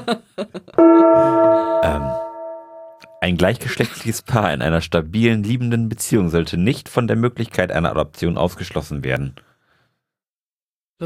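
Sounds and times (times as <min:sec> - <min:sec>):
speech: 0:00.0 - 0:02.1, 0:03.3 - 0:09.5
gong struck loudly ringing: 0:00.8 - 0:03.2.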